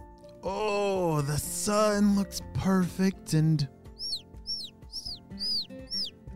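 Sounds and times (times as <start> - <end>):
speech: 0.4 - 3.8
baby birds chirping outside: 3.9 - 6.2.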